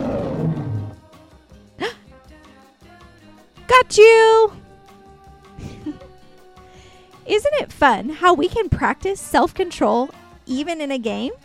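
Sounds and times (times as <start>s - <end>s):
loud growling lion roar: 0.0s - 1.0s
short rising cry: 0.0s - 1.0s
speech: 3.8s - 4.6s, 7.3s - 11.4s.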